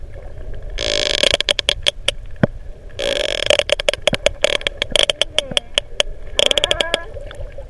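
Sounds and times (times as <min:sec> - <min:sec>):
murky underwater rumble and hiss: 0:00.0 - 0:07.6
sperm whale clicks from a young whale and two adults: 0:00.7 - 0:07.4.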